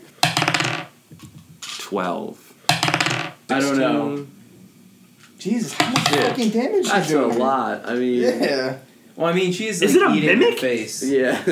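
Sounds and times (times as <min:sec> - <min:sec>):
six-sided die clattering across a hard tabletop: 0:00.1 - 0:01.8, 0:02.7 - 0:03.6, 0:05.2 - 0:07.1
speech: 0:01.9 - 0:02.5, 0:03.5 - 0:04.4, 0:05.4 - 0:11.5
laughter: 0:05.5 - 0:08.9, 0:09.5 - 0:11.5.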